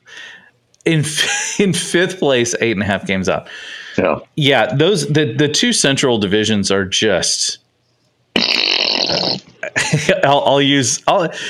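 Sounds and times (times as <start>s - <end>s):
speech: 0.8s - 7.6s, 8.4s - 11.4s
loud raspy fart noise: 8.3s - 9.6s.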